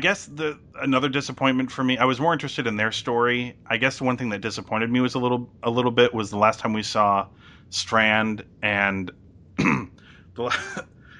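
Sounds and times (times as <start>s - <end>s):
speech: 0.0s - 9.8s, 10.4s - 10.9s
person coughing: 9.6s - 10.8s.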